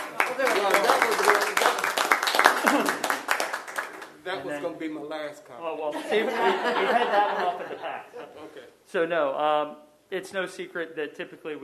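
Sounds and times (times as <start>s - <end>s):
laughter: 0.0s - 3.4s, 5.9s - 8.5s
roomful of people clapping at a town council meeting: 0.0s - 4.4s
speech: 4.4s - 11.6s.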